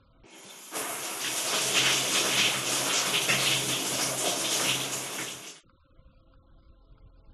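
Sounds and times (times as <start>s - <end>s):
shower running with a broad hissing spray of water: 0.3s - 5.6s.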